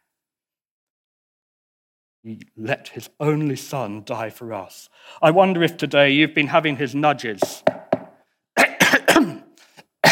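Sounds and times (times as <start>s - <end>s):
speech: 2.2s - 7.9s
person coughing: 8.6s - 10.1s.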